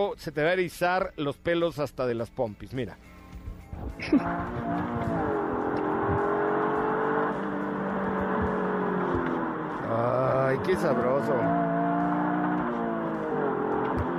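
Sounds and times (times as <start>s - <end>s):
speech: 0.0s - 3.2s, 3.9s - 5.2s, 9.9s - 11.7s
person making an appreciative remark: 4.0s - 5.3s
small Japanese car engine idling and revving: 4.0s - 14.1s.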